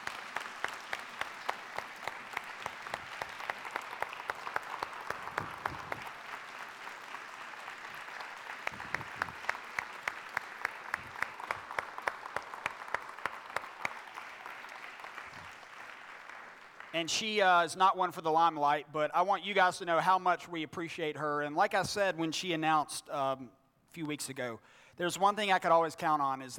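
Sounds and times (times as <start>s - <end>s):
room full of people clapping: 0.0s - 17.0s
speech: 17.0s - 26.5s.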